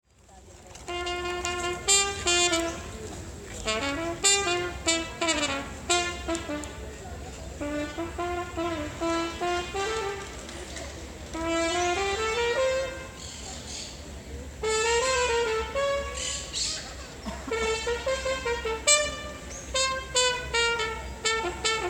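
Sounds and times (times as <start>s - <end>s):
trumpet playing in a park: 0.8s - 13.4s, 14.5s - 21.8s.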